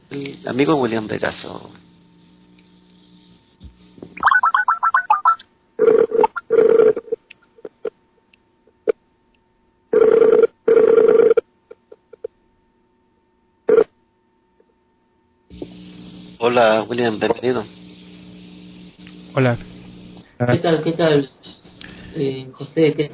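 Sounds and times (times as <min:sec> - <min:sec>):
speech: 0:00.1 - 0:01.8, 0:16.6 - 0:17.8, 0:19.4 - 0:19.7, 0:20.4 - 0:21.5, 0:22.2 - 0:23.1
telephone double rings: 0:04.2 - 0:07.2, 0:10.0 - 0:11.4.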